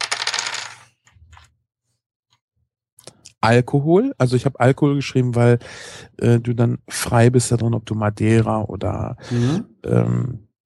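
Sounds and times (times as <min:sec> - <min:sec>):
dice rattling and clattering across a hard table surface: 0:00.0 - 0:01.5
speech: 0:03.4 - 0:10.5.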